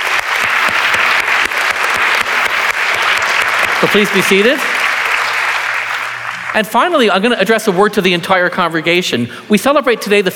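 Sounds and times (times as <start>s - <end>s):
large church audience applauding during a service: 0.0s - 7.9s
speech: 3.8s - 4.8s, 6.6s - 10.3s.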